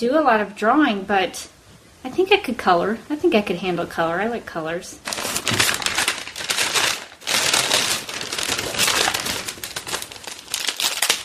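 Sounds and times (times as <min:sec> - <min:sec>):
speech: 0:00.0 - 0:05.6
plastic packaging crinkling and rustling as it is handled: 0:05.0 - 0:11.2.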